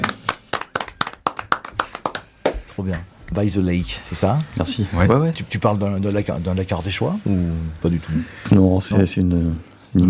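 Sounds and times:
hands clapping in a steady rhythm: 0.0s - 3.4s
speech: 2.8s - 10.0s.

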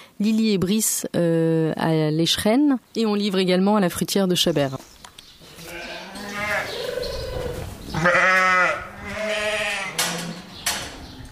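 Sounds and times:
speech: 0.2s - 5.0s
sheep bleating: 5.4s - 6.8s, 7.9s - 10.0s.

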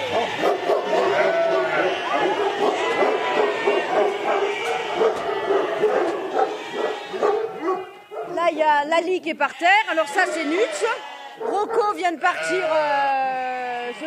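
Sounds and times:
short bark-like yelps: 0.0s - 8.4s, 11.4s - 11.9s
billy goat bleating: 0.0s - 14.0s
speech: 9.0s - 13.2s.

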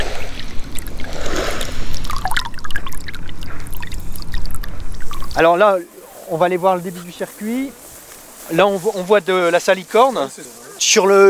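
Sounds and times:
small water splashes: 0.0s - 5.5s
water trickling slowly into a salt-marsh evaporation pond as it is refilled: 0.0s - 7.7s
speech: 5.4s - 7.8s, 8.5s - 11.2s.

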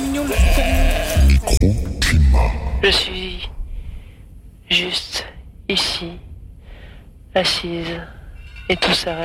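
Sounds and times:
sheep and goats of a high-mountain shepherd bleating in the Pyrenees: 0.1s - 1.6s
speech: 0.2s - 0.5s, 2.9s - 3.2s, 4.8s - 6.3s, 7.4s - 9.2s.

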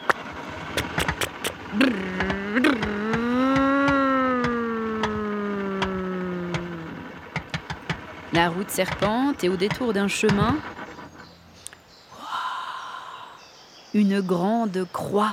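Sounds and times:
sharp mechanical clicks: 0.0s - 11.8s
car engine starting: 0.0s - 12.1s
speech: 1.7s - 2.3s, 8.4s - 10.8s, 14.0s - 15.3s.

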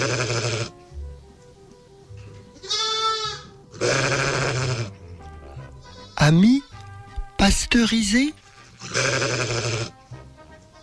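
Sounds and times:
sheep bleating: 0.0s - 0.7s, 2.6s - 6.7s, 8.4s - 10.1s
speech: 6.3s - 6.6s, 7.5s - 9.6s.

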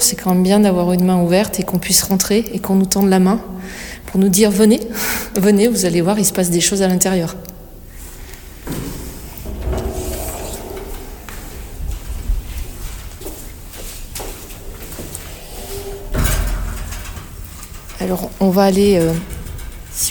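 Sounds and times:
speech: 0.0s - 7.5s, 18.1s - 19.4s, 20.0s - 20.1s
door slamming: 9.5s - 11.7s, 14.2s - 17.6s.

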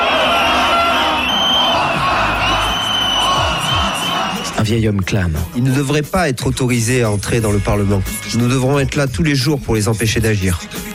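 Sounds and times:
dense protest crowd in Parliament Square shouting and cheering: 0.0s - 4.9s
speech: 4.7s - 10.9s.

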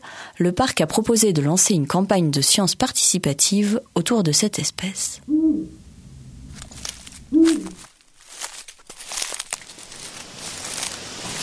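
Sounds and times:
speech: 0.4s - 5.8s
Eurasian eagle-owl giving a deep short hoot: 5.2s - 7.9s
rustling and crinkling: 6.4s - 11.4s.

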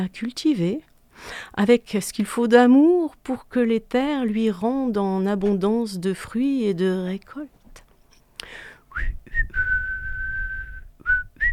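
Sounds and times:
speech: 0.0s - 7.6s
person whistling clumsily: 8.9s - 11.5s.

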